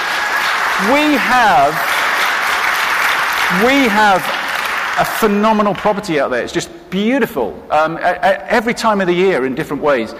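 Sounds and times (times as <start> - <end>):
audience applause at a church ministry fair: 0.0 - 6.2
speech: 0.8 - 1.9, 3.5 - 4.4, 5.0 - 10.1.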